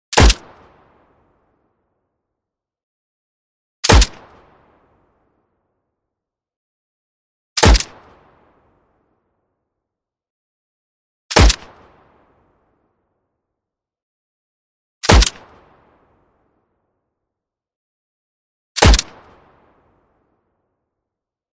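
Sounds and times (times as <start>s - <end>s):
StG 44 assault rifle mechanical single shot: 0.1s - 0.5s, 3.8s - 4.2s, 7.6s - 8.0s, 11.3s - 11.7s, 15.0s - 15.5s, 18.8s - 19.2s.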